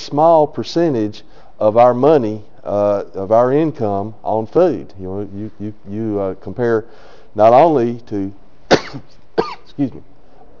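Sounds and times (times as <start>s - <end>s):
speech: 0.1s - 10.1s
short sharp coughs: 8.7s - 9.8s.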